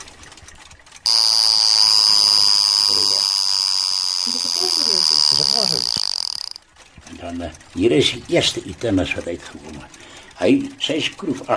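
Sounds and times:
mechanical alarm clock ringing: 1.0 - 6.6
speech: 7.3 - 11.5.

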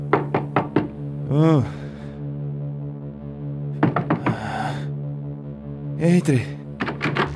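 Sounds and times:
knocking on a hotel room door: 0.0 - 1.1, 3.8 - 4.6, 6.8 - 7.3
low humming drone: 0.0 - 7.3
speech: 1.3 - 1.8, 6.0 - 6.6.

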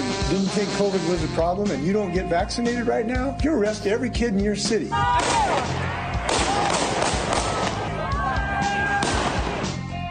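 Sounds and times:
people talking and shouting: 0.0 - 10.0
speech: 0.3 - 6.0
gunshots: 5.2 - 7.8, 9.0 - 9.8.

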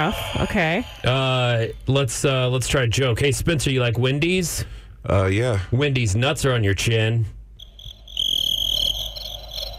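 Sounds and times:
speech: 0.0 - 7.4
cricket chirping from an instant audience sound effects machine: 7.6 - 9.7.

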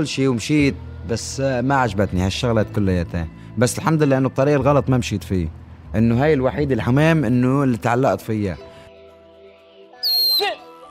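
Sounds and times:
speech: 0.0 - 8.7
human whistle calling homing pigeons: 10.0 - 10.6.

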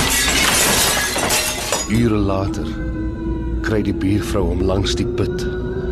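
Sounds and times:
plates crashing and shattering: 0.0 - 2.0
speech: 1.9 - 5.5.

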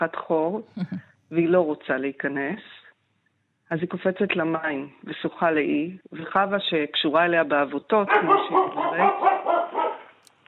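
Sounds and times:
speech: 0.0 - 2.8, 3.7 - 9.8
laughter: 0.8 - 1.0
dog barking: 8.1 - 10.2.

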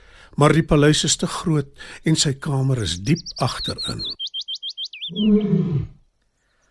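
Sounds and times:
speech: 0.3 - 4.2, 5.1 - 6.0
high bird chirps: 2.8 - 5.8, 6.4 - 6.6
deep rumbling lion roar: 5.1 - 6.0.

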